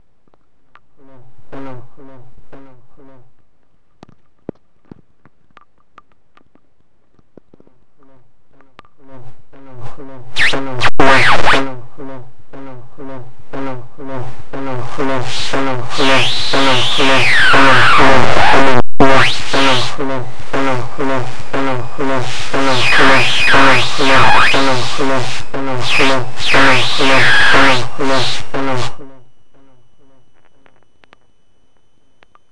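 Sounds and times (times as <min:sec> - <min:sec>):
FM transmitter interference picked up by in-ear headphones connected to a recorder: 0:10.3 - 0:12.0, 0:13.2 - 0:29.2.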